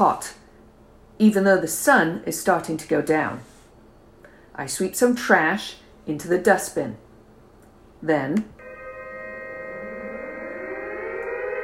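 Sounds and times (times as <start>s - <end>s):
speech: 0.0s - 0.4s, 1.2s - 3.5s, 4.6s - 7.0s, 8.0s - 8.6s
warning sirens wailing during an air-raid drill: 8.6s - 11.6s.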